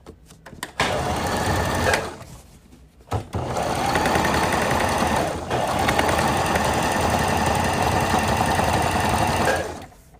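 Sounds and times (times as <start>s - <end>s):
sewing machine stitching rectangular fabric pieces together for a patchwork bag: 0.8s - 2.3s, 3.1s - 10.0s.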